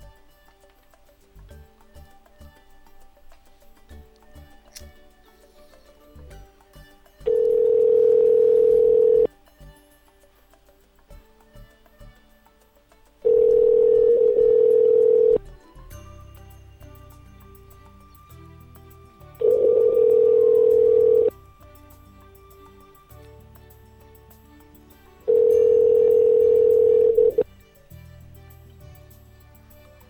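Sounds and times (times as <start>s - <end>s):
telephone ringback tone while calling a cell phone: 7.3s - 9.3s, 13.3s - 15.4s, 19.4s - 21.3s, 25.3s - 27.4s.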